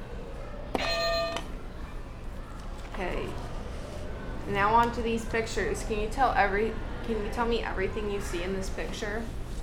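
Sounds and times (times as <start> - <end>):
single electronic buzzer tone: 0.8 - 1.5
speech: 3.0 - 3.5, 4.5 - 9.4.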